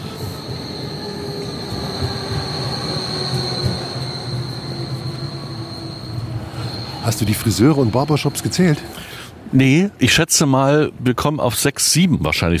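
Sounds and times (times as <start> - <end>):
thin high metallic tram wheel squeal: 0.0 - 9.2
tram rumbling along rails on a street: 0.0 - 11.2
speech: 7.1 - 12.5.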